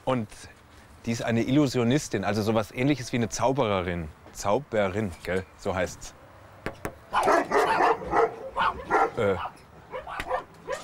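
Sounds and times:
speech: 0.0s - 6.8s, 9.2s - 9.6s
several dogs barking and yipping: 7.1s - 10.8s.

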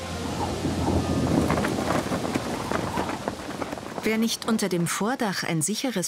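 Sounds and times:
deep rumble of thunder in a summer storm at Lake Waging: 0.0s - 4.7s
heavy rain from a sudden summer storm pouring at Lake Waging: 0.0s - 4.9s
speech: 4.0s - 6.0s.

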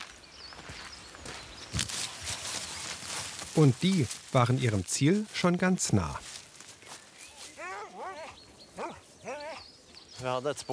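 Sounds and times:
footsteps of a person walking down: 0.0s - 8.0s
speech: 3.6s - 6.3s, 10.2s - 10.7s.

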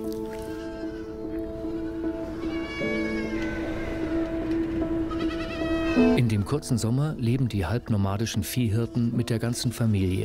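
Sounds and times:
flock of sheep and goats bleating on high summer pastures: 0.5s - 4.0s, 5.0s - 6.2s
speech: 6.0s - 10.2s.

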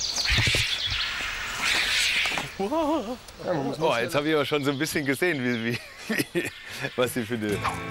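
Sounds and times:
Himalayan snow vulture hissing and rasping in an aggressive defensive display: 0.6s - 2.5s
speech: 2.6s - 7.9s
laughter: 5.6s - 7.6s.

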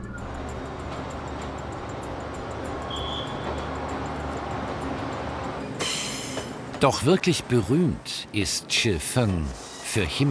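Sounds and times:
high-pitched squeal: 0.0s - 4.3s
train passing through a small town along Old Street: 0.0s - 10.2s
speech: 6.8s - 10.2s.

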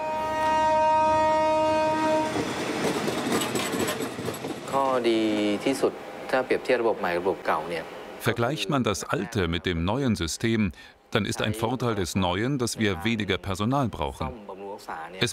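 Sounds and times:
train horn at a station in Nakhon Chai Si: 0.0s - 2.7s
train passing through a station in Nakhon Chai Si with rumbling rattle: 1.8s - 8.0s
speech: 5.0s - 15.3s.

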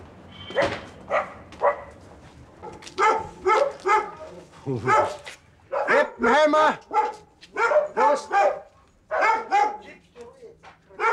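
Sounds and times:
speech: 0.5s - 1.3s, 4.7s - 5.3s, 6.2s - 7.0s
dog barking: 0.5s - 2.0s, 2.6s - 6.3s, 6.9s - 10.0s, 10.9s - 11.1s.

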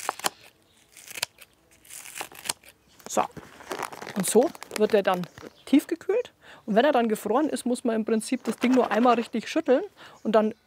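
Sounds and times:
kitchen scissors snipping a handful of fresh herbs into a tin: 0.0s - 5.5s
light rustling of herb stems: 0.0s - 6.1s, 8.2s - 9.7s
speech: 3.2s - 3.4s, 4.2s - 10.6s.

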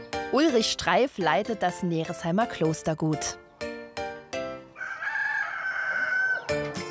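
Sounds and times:
speech: 0.3s - 3.4s
chickens clucking and squawking: 4.6s - 6.8s
rooster crowing: 4.7s - 6.7s.

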